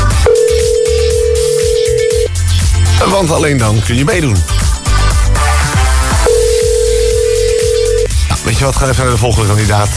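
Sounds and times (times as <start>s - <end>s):
low rhythmic music bed: 0.0s - 9.9s
ringback tone of an outgoing phone call to a quiz contestant: 0.2s - 2.4s, 6.2s - 8.1s
speech: 3.2s - 4.6s, 8.5s - 9.9s.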